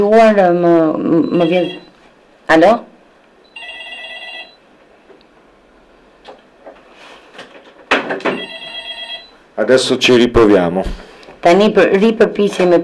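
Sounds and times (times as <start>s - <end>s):
speech: 0.0s - 1.8s, 2.5s - 2.9s, 9.6s - 12.8s
telephone ringing for an incoming call: 1.2s - 2.0s, 3.5s - 4.7s, 8.2s - 9.4s.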